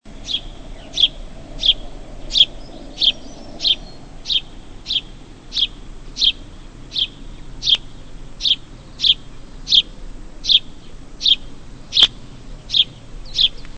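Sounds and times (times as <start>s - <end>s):
house sparrow singing: 0.1s - 13.7s.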